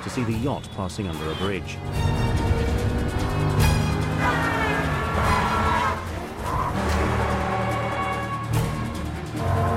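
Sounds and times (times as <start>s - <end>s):
speech: 0.0s - 2.3s
car engine roaring while speeding against traffic: 1.1s - 9.7s
car tires squealing and skidding: 3.8s - 8.7s.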